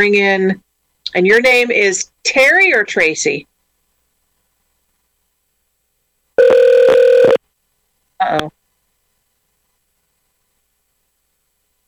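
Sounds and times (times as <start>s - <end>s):
speech: 0.0s - 3.5s, 8.2s - 8.6s
telephone line tone after caller disconnected: 6.4s - 7.4s.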